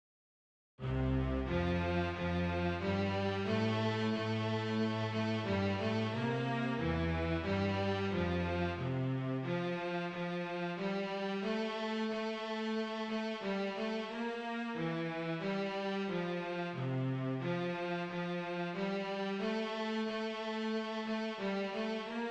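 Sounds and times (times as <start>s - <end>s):
cello part: 0.8s - 22.2s.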